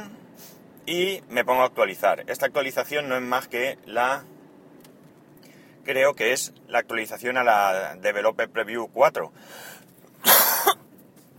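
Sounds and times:
speech: 0:00.9 - 0:04.4, 0:05.8 - 0:10.4
person's habitual daily cough: 0:10.2 - 0:10.8.

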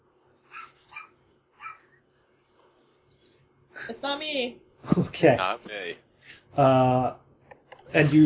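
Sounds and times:
low hum: 0:00.0 - 0:08.2
small dog yipping: 0:00.5 - 0:01.9
speech: 0:03.9 - 0:07.2, 0:07.9 - 0:08.2.

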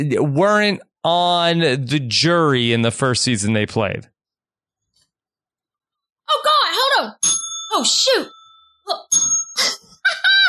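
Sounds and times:
speech: 0:00.0 - 0:04.1, 0:06.4 - 0:09.4
small bell ringing with bright metallic dings: 0:07.2 - 0:10.0.

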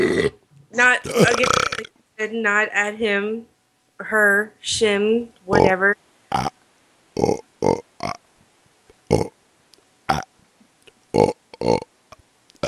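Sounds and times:
loud gurgling burps: 0:00.0 - 0:00.4, 0:01.0 - 0:01.9, 0:06.3 - 0:06.5, 0:07.2 - 0:08.2, 0:09.1 - 0:09.3, 0:11.2 - 0:11.9
speech: 0:00.2 - 0:06.6, 0:07.2 - 0:08.2.

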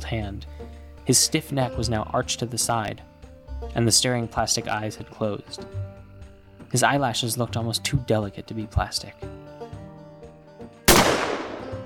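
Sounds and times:
quiet, low, steady tonal background: 0:00.0 - 0:11.8
speech: 0:00.1 - 0:06.0, 0:06.7 - 0:09.3
shotgun blast at night: 0:10.9 - 0:11.8.

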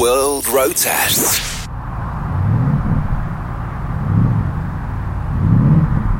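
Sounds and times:
speech: 0:00.5 - 0:01.6
4-litre V8 engine of a Porsche Panamera Turbo S E Hybrid estate car revving: 0:01.7 - 0:06.1.

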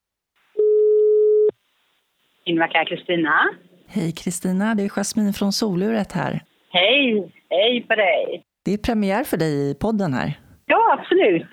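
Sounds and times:
telephone ringing tone while placing a call: 0:00.6 - 0:01.5
speech: 0:02.5 - 0:11.5.

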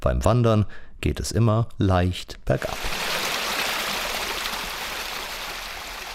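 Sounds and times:
speech: 0:00.0 - 0:03.3
water flowing in a mountain irrigation channel: 0:02.6 - 0:06.1.

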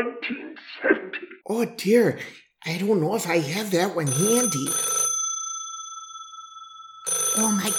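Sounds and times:
speech: 0:00.0 - 0:00.9, 0:01.5 - 0:04.9, 0:07.4 - 0:07.7
telephone ringing with a bell-like tone: 0:04.1 - 0:07.7.

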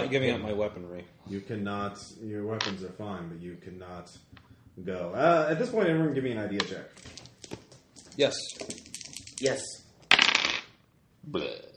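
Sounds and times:
speech: 0:00.1 - 0:07.3, 0:08.2 - 0:08.8, 0:09.4 - 0:09.8, 0:11.2 - 0:11.7
dice clattering and rattling across a hard surface: 0:07.0 - 0:10.8.

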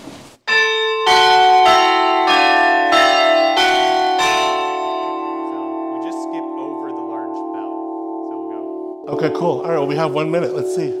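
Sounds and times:
church tower bells rung descending from highest: 0:00.5 - 0:10.9
speech: 0:09.2 - 0:10.9.

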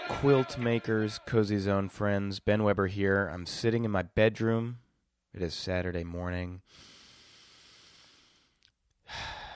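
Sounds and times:
speech: 0:00.2 - 0:06.9
deep inhale through the nose smelling a scented candle: 0:06.7 - 0:09.5
loud airy exhale: 0:06.7 - 0:09.5.

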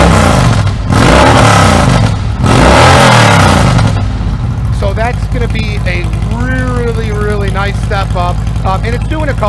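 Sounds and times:
Harley motorcycle engine revving through 2-into-1 exhaust: 0:00.0 - 0:09.4.

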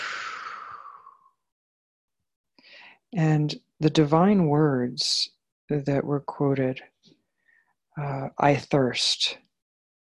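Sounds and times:
long airy exhale: 0:00.0 - 0:01.4
person breathing in: 0:00.0 - 0:01.4, 0:02.6 - 0:03.1, 0:07.4 - 0:07.8
speech: 0:03.1 - 0:06.9, 0:08.0 - 0:09.4.

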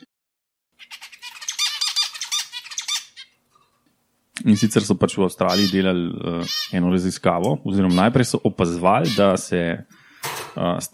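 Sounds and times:
finch calls: 0:00.8 - 0:03.4, 0:04.5 - 0:06.8, 0:07.8 - 0:08.2, 0:09.0 - 0:09.3
speech: 0:04.4 - 0:10.0, 0:10.6 - 0:10.9.

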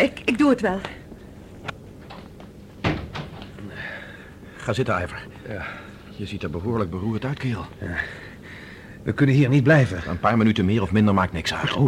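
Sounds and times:
speech: 0:00.0 - 0:01.0, 0:04.7 - 0:08.2, 0:09.0 - 0:11.8
door swinging shut with a thud: 0:02.8 - 0:03.6.

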